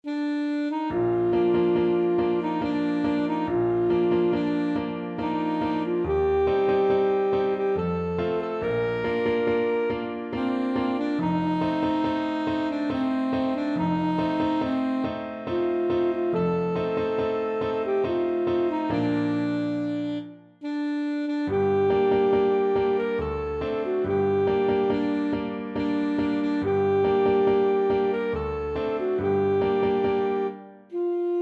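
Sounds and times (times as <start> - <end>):
alto saxophone: 0.0 - 31.3.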